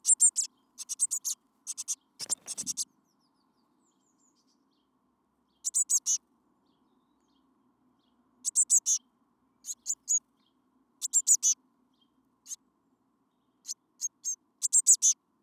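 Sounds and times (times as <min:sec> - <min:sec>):
Eurasian blue tit Cyanistes caeruleus calling: 0:00.0 - 0:02.8, 0:05.6 - 0:06.2, 0:08.4 - 0:09.0, 0:09.6 - 0:10.2, 0:11.0 - 0:11.6, 0:13.6 - 0:15.2.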